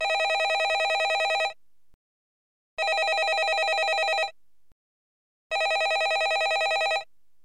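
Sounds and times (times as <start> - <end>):
office telephone ringing: 0.0 - 1.6, 2.8 - 4.4, 5.5 - 7.1.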